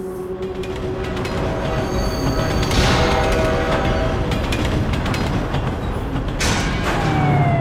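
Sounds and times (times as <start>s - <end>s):
metallic squeals of flying cars: 0.1s - 4.4s
dense roar of futuristic flying-car traffic above an immense city: 0.3s - 7.6s.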